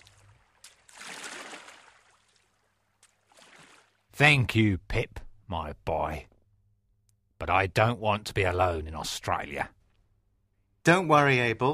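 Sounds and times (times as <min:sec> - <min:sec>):
broad surge of wash from a rowing boat: 0:00.0 - 0:02.5, 0:03.2 - 0:04.0
water swishing and splashing around a rowing boat on the River Thames at night: 0:00.0 - 0:04.1
speech: 0:04.2 - 0:06.3, 0:07.4 - 0:09.8, 0:10.8 - 0:11.7.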